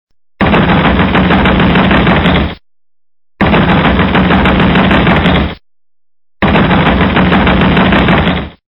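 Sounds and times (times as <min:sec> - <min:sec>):
pounding on a door: 0:00.4 - 0:02.6, 0:03.4 - 0:05.6, 0:06.4 - 0:08.6.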